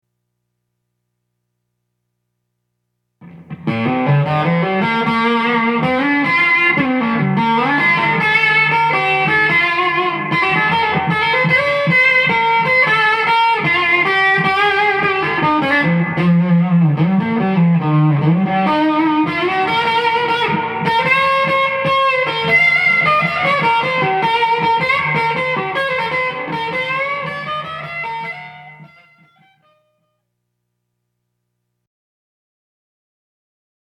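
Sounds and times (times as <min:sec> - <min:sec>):
blues guitar on neck pickup with moderate grind and reverb: 0:03.2 - 0:30.1.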